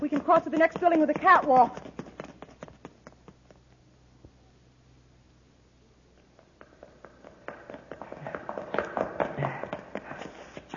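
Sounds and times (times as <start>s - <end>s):
several people running up a flight of stairs in a building: 0.0s - 3.4s, 6.4s - 10.7s
speech: 0.2s - 1.8s.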